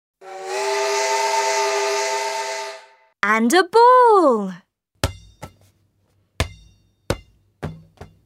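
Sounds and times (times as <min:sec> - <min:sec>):
steam train whistle: 0:00.2 - 0:03.1
speech: 0:03.2 - 0:04.6.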